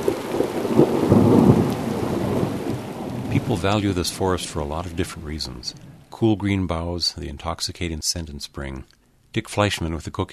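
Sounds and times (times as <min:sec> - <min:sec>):
low sustained rumble of thunder in a thunderstorm: 0:00.0 - 0:06.1
steady rain in a thunderstorm: 0:00.0 - 0:10.3
speech: 0:03.6 - 0:10.3.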